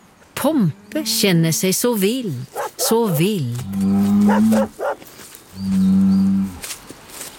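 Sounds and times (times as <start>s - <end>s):
speech: 0.4s - 4.8s
bull mooing in long low droning calls: 2.6s - 5.0s, 5.6s - 6.6s.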